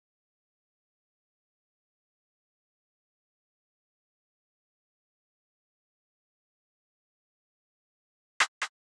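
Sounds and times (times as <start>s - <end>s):
drill percussion drum loop: 8.4s - 8.7s.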